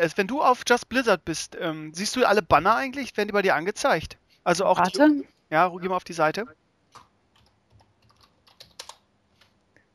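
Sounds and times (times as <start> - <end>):
speech: 0.0 - 7.0
typing on a computer keyboard: 6.9 - 9.6.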